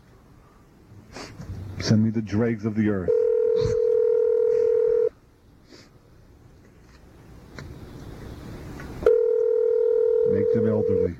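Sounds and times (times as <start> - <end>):
speech: 1.8 - 3.8
electronic tone of a telephone being dialed: 3.1 - 5.2, 9.0 - 11.1.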